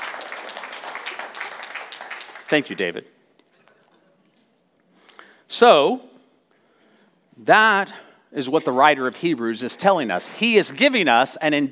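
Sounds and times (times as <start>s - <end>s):
audience applauding at a sermon: 0.0s - 2.9s
speech: 2.5s - 3.2s, 5.6s - 6.1s, 7.4s - 11.7s.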